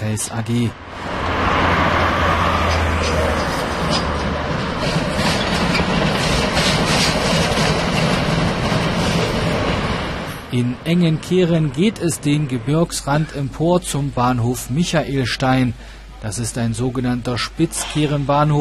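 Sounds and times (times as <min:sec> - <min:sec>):
speech: 0:00.1 - 0:01.2, 0:10.5 - 0:18.6
class 95 steam locomotive rumbling past: 0:00.8 - 0:14.9.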